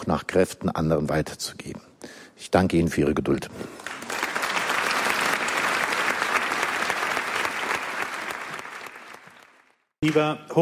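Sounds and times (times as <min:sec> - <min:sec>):
speech: 0:00.1 - 0:03.8, 0:10.0 - 0:10.6
indoor audience applause after a lecture: 0:03.7 - 0:09.9.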